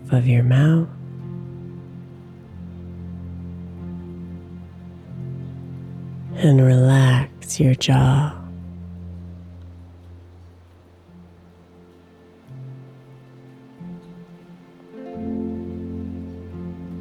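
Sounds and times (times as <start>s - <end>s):
low sustained musical drone: 0.0s - 17.0s
steady rain pattering outside: 0.0s - 17.0s
speech: 0.1s - 1.0s, 6.4s - 8.4s.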